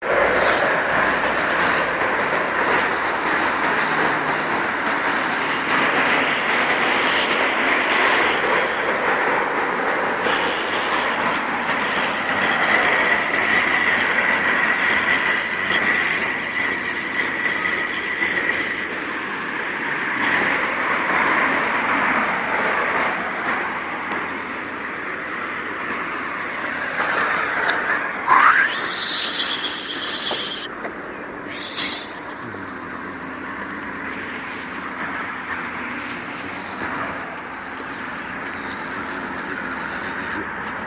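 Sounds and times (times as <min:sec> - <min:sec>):
drones while walking beside a corrugated fence: 0:00.0 - 0:40.8.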